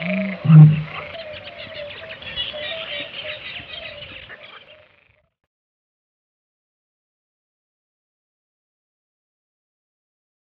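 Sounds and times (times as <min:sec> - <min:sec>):
birds chattering: 0:00.0 - 0:05.1
Eurasian bittern booming: 0:00.3 - 0:01.0.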